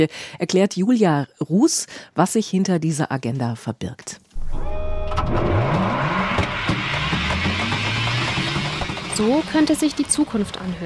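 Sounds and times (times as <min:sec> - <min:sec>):
speech: 0:00.0 - 0:05.9, 0:09.2 - 0:10.8
hyperloop capsule racing through a vacuum tube: 0:04.4 - 0:09.8.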